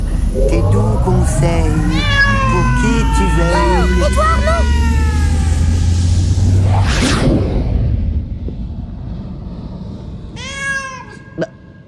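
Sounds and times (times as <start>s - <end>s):
steady low rumbling noise: 0.0s - 11.8s
speech: 0.4s - 5.1s, 6.7s - 7.5s
cat meowing: 1.4s - 5.8s, 10.4s - 11.2s.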